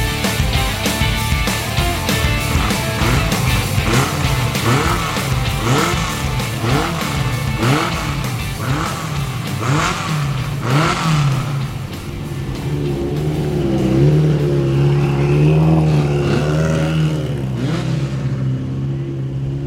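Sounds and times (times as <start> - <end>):
powerful high-horsepower car engine revving: 0.0 - 19.6.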